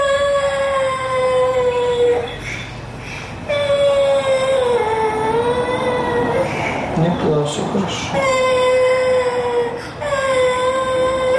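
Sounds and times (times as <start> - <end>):
girl crying: 0.0 - 2.4, 3.5 - 6.7, 8.2 - 11.3
speech: 7.4 - 8.4.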